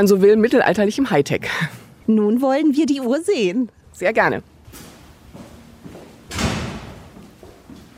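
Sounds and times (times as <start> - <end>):
speech: 0.0 - 4.8
heavy thud echoing through a tall church nave: 6.3 - 7.2.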